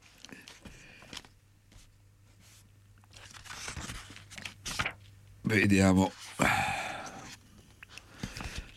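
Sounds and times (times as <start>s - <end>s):
pages of a family medical handbook flipping: 0.0s - 5.2s, 7.2s - 8.7s
speech: 5.5s - 6.6s.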